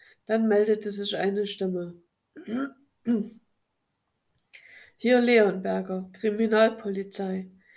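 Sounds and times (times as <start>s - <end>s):
speech: 0.3s - 3.4s, 5.0s - 7.7s
caller clearing throat on a phone call to the criminal police: 2.4s - 3.4s.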